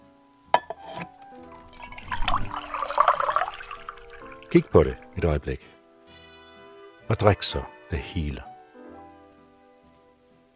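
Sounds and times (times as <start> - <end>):
glass clink: 0.6 - 5.2
tap water running and pouring into a glass: 0.8 - 5.3
speech: 4.5 - 5.8, 7.1 - 8.5.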